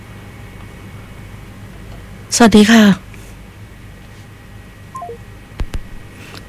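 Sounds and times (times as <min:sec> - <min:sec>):
speech: 0:02.3 - 0:03.0
short electronic telephone tones stepping downward in pitch: 0:05.0 - 0:05.2.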